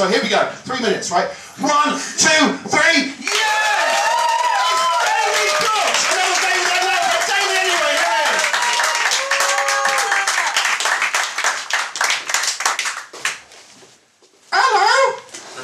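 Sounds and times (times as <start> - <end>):
speech: 0.0 - 4.1
voices whooping and cheering: 3.2 - 10.7
crowd applauding for an act: 3.2 - 13.4.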